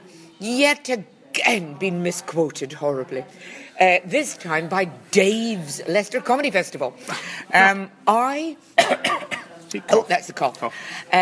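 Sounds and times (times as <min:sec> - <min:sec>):
speech: 0:00.4 - 0:11.2
person coughing: 0:08.8 - 0:09.5.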